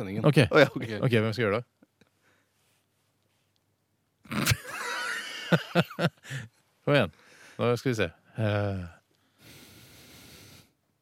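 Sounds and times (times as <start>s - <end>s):
speech: 0.0s - 1.7s, 5.5s - 9.0s
laughter: 4.3s - 6.5s
long breath blown through the nose into a microphone: 9.2s - 10.8s.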